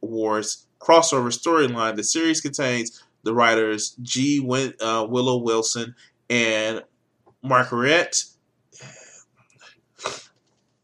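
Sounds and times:
speech: 0:00.1 - 0:09.0, 0:10.0 - 0:10.2
sneeze: 0:10.0 - 0:10.3.

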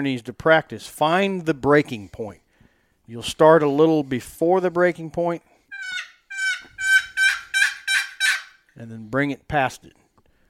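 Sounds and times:
speech: 0:00.0 - 0:02.4, 0:03.1 - 0:05.5, 0:08.8 - 0:10.0
raspy turkey yelps blown on a turkey call: 0:05.7 - 0:08.7.

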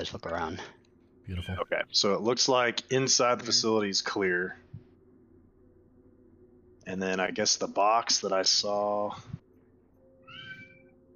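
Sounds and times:
speech: 0:00.0 - 0:04.7, 0:06.9 - 0:09.4
low steady hum: 0:00.0 - 0:11.1
cat meowing: 0:10.2 - 0:10.9.

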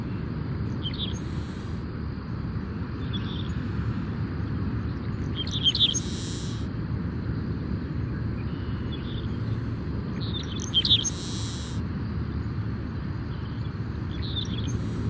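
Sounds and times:
sparrow singing at a migratory bird sanctuary in Louisiana: 0:00.0 - 0:01.7, 0:03.0 - 0:03.6, 0:04.9 - 0:06.7, 0:10.2 - 0:11.8, 0:13.2 - 0:15.0
waves crashing on the coast in Louisiana: 0:00.0 - 0:15.0.

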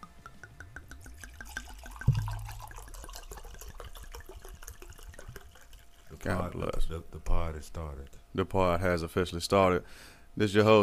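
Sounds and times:
wine poured into a glass: 0:00.5 - 0:06.5
speech: 0:06.2 - 0:10.8.

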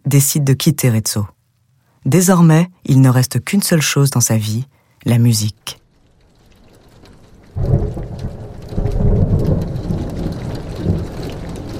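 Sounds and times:
steady rain pouring down: 0:00.0 - 0:11.7
speech: 0:00.1 - 0:01.4, 0:02.0 - 0:05.8
deep rumbles of thunder: 0:05.8 - 0:11.7.

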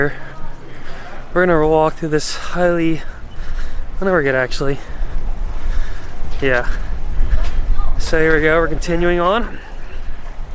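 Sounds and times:
speech: 0:00.0 - 0:00.4, 0:01.3 - 0:03.2, 0:04.0 - 0:05.0, 0:06.4 - 0:06.9, 0:08.0 - 0:09.7
strong wind blowing outdoors up high buffeting the microphone: 0:03.0 - 0:10.5.

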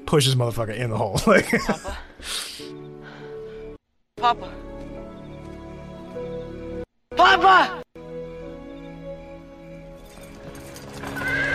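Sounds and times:
continuous tonal music: 0:00.0 - 0:11.5
speech: 0:00.1 - 0:02.5, 0:04.2 - 0:04.6, 0:07.3 - 0:07.8
laughter: 0:01.0 - 0:02.1
Victorian-style horse-drawn carriage clip-clopping past: 0:10.0 - 0:11.5
horse whinnying: 0:10.9 - 0:11.5.

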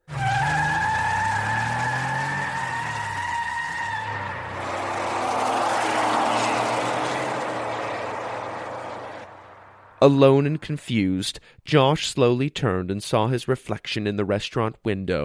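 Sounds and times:
car engines revving and roaring: 0:00.0 - 0:10.0
car tires screeching: 0:00.0 - 0:10.0
speech: 0:10.0 - 0:15.2.

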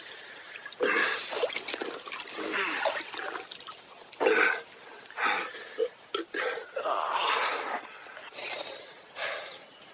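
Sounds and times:
small water splashes: 0:00.0 - 0:05.2
slurping and gulping water from a pool: 0:00.0 - 0:08.9.

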